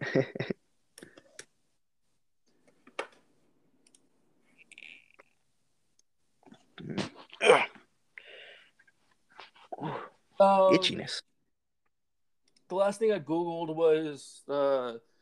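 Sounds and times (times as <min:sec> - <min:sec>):
speech: 0:00.1 - 0:00.6, 0:10.4 - 0:11.3, 0:12.7 - 0:15.1
computer keyboard and mouse clicks: 0:03.8 - 0:04.8.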